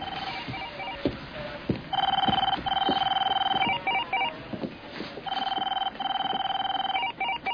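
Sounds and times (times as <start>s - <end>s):
telephone ringing in long electronic bursts: 0.0s - 1.1s, 1.9s - 4.3s, 5.2s - 7.5s
noise: 0.0s - 7.5s.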